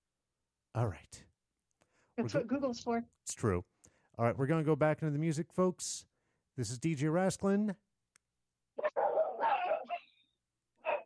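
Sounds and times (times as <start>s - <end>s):
speech: 0.8s - 1.3s, 2.2s - 7.8s
dog barking: 8.8s - 10.2s, 10.8s - 11.0s.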